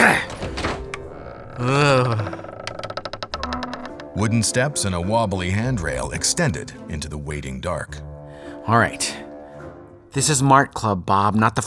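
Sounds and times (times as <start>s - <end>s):
rattling clicks: 0.0s - 4.2s
stuck basement door creaking as it is forced open: 0.0s - 5.1s
speech: 4.2s - 8.1s, 8.7s - 9.2s, 10.1s - 11.6s.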